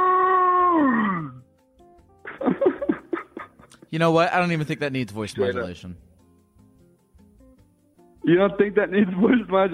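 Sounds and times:
person imitating a dinosaur roar: 0.0 - 1.4
bursts of laughter: 2.2 - 3.8
speech: 3.9 - 6.1, 8.2 - 9.7.

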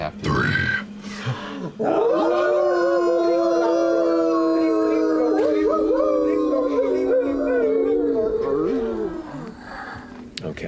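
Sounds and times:
speech: 1.2 - 2.1
several human voices howling in imitation of wolves: 1.8 - 10.3.

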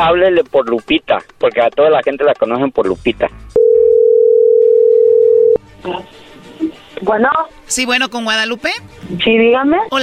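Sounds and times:
speech: 0.0 - 3.9, 5.8 - 10.0
telephone dial tone: 3.6 - 5.6.

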